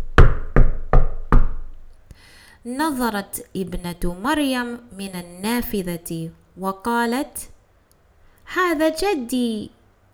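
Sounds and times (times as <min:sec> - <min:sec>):
loud knocking on a house door: 0:00.0 - 0:01.9
speech: 0:02.6 - 0:07.5, 0:08.5 - 0:09.8.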